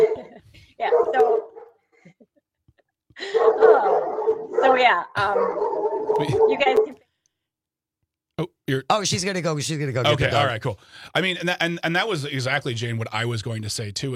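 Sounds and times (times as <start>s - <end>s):
agitated dog barking and yelping: 0.0s - 1.8s, 3.2s - 7.0s
speech: 4.8s - 7.0s, 8.4s - 14.1s.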